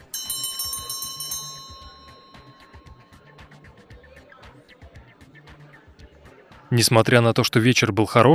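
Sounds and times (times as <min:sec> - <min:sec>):
busy clinks in a pub: 0:00.0 - 0:03.9
bar bell in a pub struck to announce closing time: 0:00.0 - 0:04.0
low thumping beat: 0:00.0 - 0:07.0
speech: 0:06.7 - 0:08.3.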